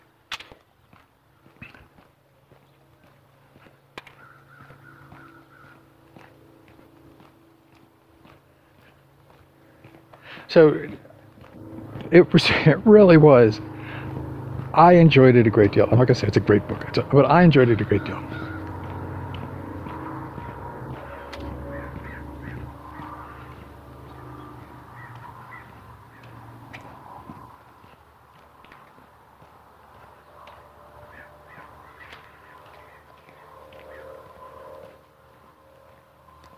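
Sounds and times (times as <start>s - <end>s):
low outdoor rumble possibly traffic: 0.0s - 36.5s
crows cawing: 4.0s - 6.4s, 13.5s - 14.8s, 16.2s - 28.0s, 29.8s - 35.0s
speech: 10.5s - 11.0s, 12.1s - 13.7s, 14.8s - 18.5s.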